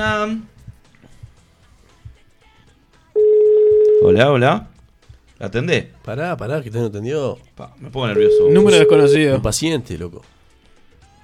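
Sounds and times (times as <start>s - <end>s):
speech: 0.0s - 0.6s, 4.0s - 4.7s, 5.4s - 10.4s
telephone ringback tone on an outgoing call: 3.2s - 4.4s, 8.2s - 9.4s.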